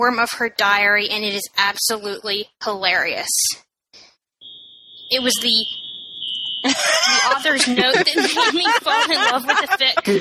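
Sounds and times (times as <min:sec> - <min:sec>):
speech: 0:00.0 - 0:04.0, 0:05.1 - 0:05.9, 0:06.6 - 0:10.1
fire alarm steady piercing high-pitched tone: 0:04.4 - 0:09.8
laughter: 0:06.6 - 0:10.1.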